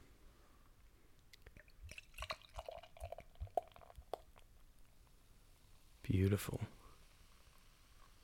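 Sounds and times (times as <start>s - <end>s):
fizzy dripping patter of beer foam: 1.2s - 4.9s
beer glugging from a bottle into a glass: 1.4s - 4.5s
speech: 6.1s - 6.8s.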